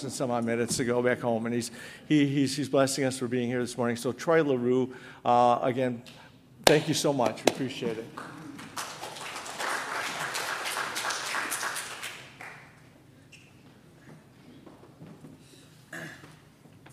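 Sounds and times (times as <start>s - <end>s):
speech: 0.0s - 8.4s
roomful of people applauding: 8.1s - 12.8s
person coughing: 15.9s - 16.5s.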